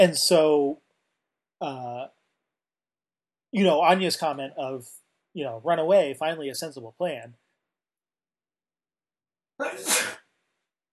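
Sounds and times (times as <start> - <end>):
speech: 0.0 - 0.8, 1.6 - 2.2, 3.5 - 7.4, 9.6 - 10.2
sneeze: 9.6 - 10.3.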